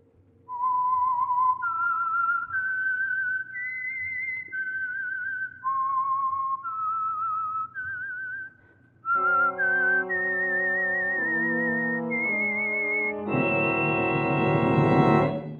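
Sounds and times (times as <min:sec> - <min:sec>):
lone person whistling a slow eerie melody: 0:00.5 - 0:15.5
orchestra playing: 0:09.2 - 0:15.5.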